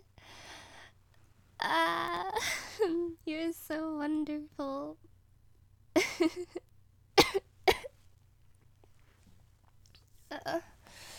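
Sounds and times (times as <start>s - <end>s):
low steady hum: 0.0s - 11.1s
speech: 6.2s - 6.6s
person coughing: 7.2s - 7.9s.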